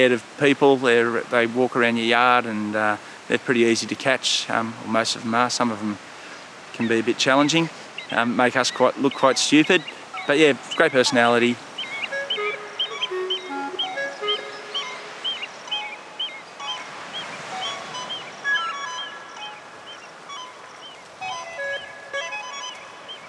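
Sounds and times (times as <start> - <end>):
speech: 0.0 - 6.1, 6.8 - 11.7
ocean surf breaking on the shore: 0.0 - 23.2
bright repeated bird calls chirping: 4.9 - 23.2.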